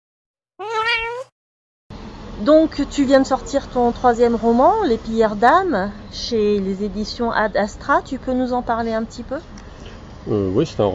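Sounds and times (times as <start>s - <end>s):
cat meowing: 0.6s - 1.3s
speech: 2.4s - 9.6s, 10.2s - 10.9s.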